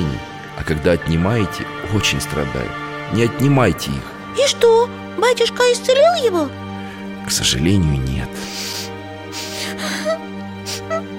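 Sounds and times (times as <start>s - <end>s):
speech: 0.6s - 6.6s, 7.3s - 8.6s
child crying softly with sniffling sobs: 9.6s - 11.1s.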